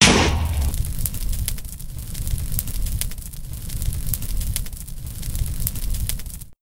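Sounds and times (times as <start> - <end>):
fire burning: 0.0 - 6.6.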